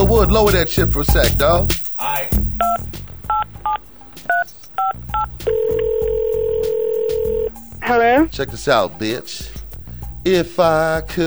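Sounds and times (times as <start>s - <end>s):
speech: 0.1s - 2.4s, 7.9s - 9.5s, 10.2s - 11.2s
telephone keypad tones dialing out for a call: 2.6s - 7.5s
steady telephone tone: 4.3s - 7.6s.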